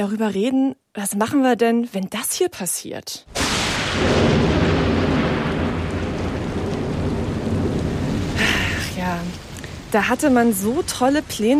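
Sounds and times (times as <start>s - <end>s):
speech: 0.0s - 4.6s, 9.0s - 11.5s
loud rumbling thunderclap: 3.3s - 11.5s
steady heavy rainfall of large raindrops: 3.3s - 11.5s.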